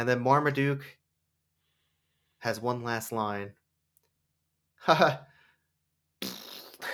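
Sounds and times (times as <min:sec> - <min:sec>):
speech: 0:00.0 - 0:01.0, 0:02.4 - 0:03.6, 0:04.8 - 0:05.3
blown raspberry: 0:06.2 - 0:06.9
voice imitating a fart: 0:06.2 - 0:06.9.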